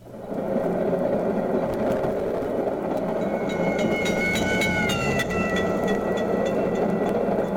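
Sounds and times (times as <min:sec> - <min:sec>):
moving train roar and rattle heard from aboard: 0:00.0 - 0:07.5
railway crossing bell clanging with pitch dropping: 0:03.0 - 0:07.5.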